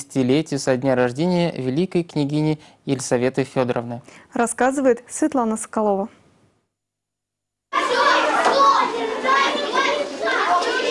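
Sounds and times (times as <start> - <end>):
speech: 0.1 - 6.2
many children's voices chattering in a crowded room: 7.7 - 10.9.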